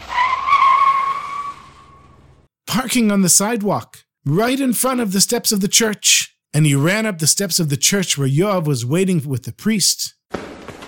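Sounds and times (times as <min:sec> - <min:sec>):
car tires screeching as a car skids to a stop: 0:00.0 - 0:02.4
speech: 0:02.8 - 0:10.6.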